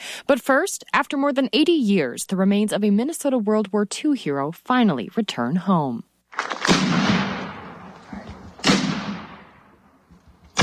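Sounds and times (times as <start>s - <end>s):
speech: 0.3s - 6.5s
cannon blasts of a ceremonial salute echoing across open ground: 6.3s - 9.9s.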